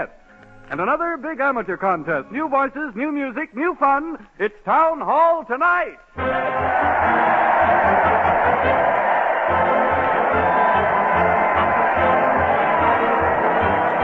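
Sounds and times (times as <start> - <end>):
speech: 0.0 - 7.1
large crowd cheering and roaring at a parade: 6.2 - 14.0.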